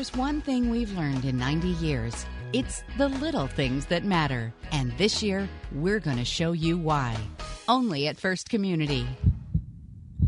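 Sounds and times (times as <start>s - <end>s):
speech: 0.0s - 9.3s
heart beating with deep thumps: 9.1s - 10.2s.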